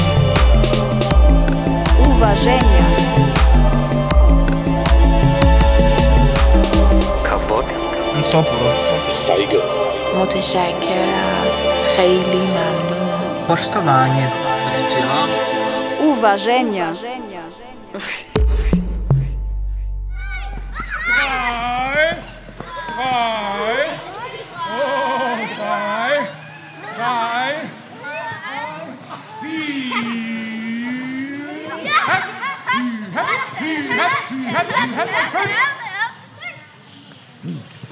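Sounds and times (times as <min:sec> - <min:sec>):
low rumbling thump: 0:00.0 - 0:08.4, 0:18.3 - 0:24.2
group of children calling and chattering while romping on a meadow: 0:00.0 - 0:18.4, 0:20.2 - 0:30.2, 0:31.2 - 0:37.2
speech: 0:02.3 - 0:03.4, 0:08.2 - 0:15.5, 0:16.1 - 0:18.3
laughter: 0:29.4 - 0:36.2.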